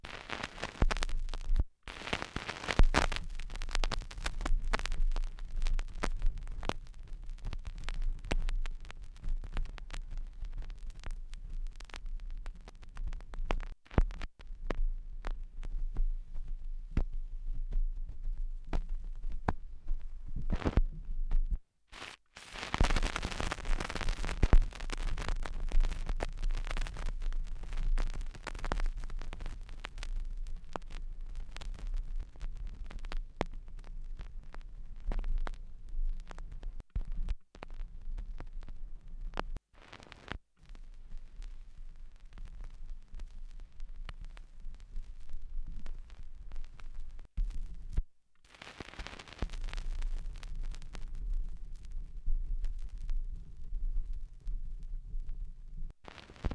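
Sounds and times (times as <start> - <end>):
vinyl record crackle: 0.0 - 56.5.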